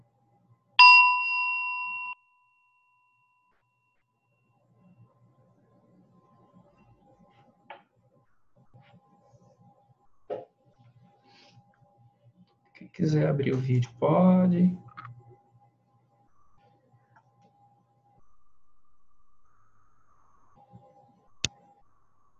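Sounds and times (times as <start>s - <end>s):
single bell strike with bright sustained tone: 0.8s - 2.6s
speech: 13.0s - 14.8s.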